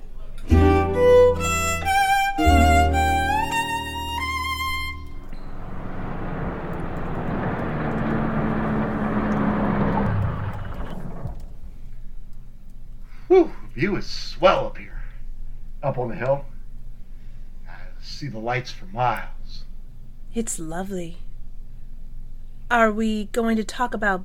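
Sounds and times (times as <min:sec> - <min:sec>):
tonal sounds: 0:00.5 - 0:12.0
car engine and road rumble driving up a hill at night: 0:04.6 - 0:12.0
speech: 0:13.4 - 0:14.9, 0:15.8 - 0:16.5, 0:18.2 - 0:19.6, 0:20.4 - 0:21.2, 0:22.7 - 0:24.2.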